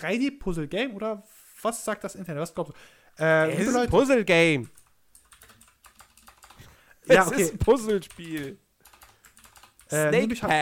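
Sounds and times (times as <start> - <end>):
speech: 0.0 - 4.8, 7.1 - 8.6, 9.9 - 10.6
typing on a computer keyboard: 4.6 - 6.6, 7.7 - 10.0.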